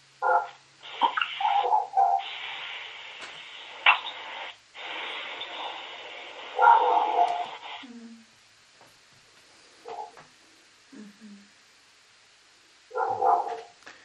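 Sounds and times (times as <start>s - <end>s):
dog barking: 0.2s - 0.6s, 1.5s - 2.3s, 6.6s - 7.5s, 12.9s - 13.8s.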